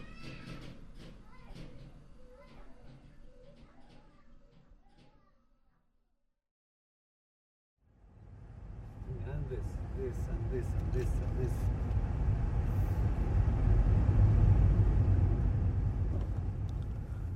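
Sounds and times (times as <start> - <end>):
car engine rumble heard from inside a car driving from Howara toward Beïta: 8.0 - 17.3.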